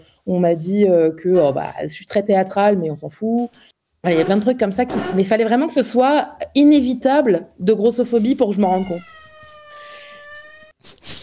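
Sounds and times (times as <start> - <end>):
speech: 0.0 - 9.2, 10.8 - 11.2
cat meowing: 8.6 - 10.8.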